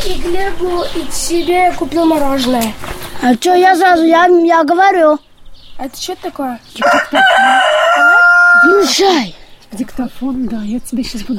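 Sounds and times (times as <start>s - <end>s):
speech: 0.2s - 7.6s, 8.7s - 11.3s
rooster crowing in a chicken coop: 6.8s - 9.0s.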